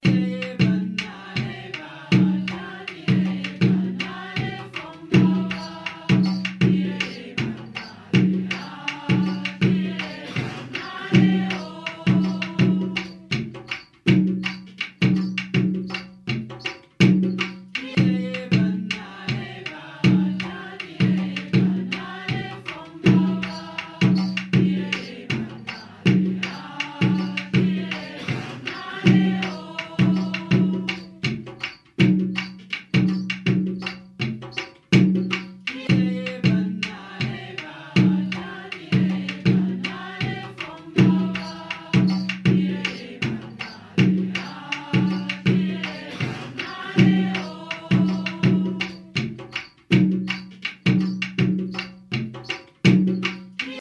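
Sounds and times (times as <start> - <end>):
djembe drumming loop: 0.0 - 53.7.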